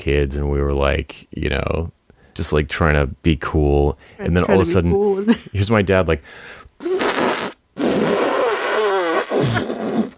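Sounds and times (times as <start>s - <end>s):
speech: 0.0s - 7.0s
person imitating a loud amplified farting noise: 6.8s - 10.1s.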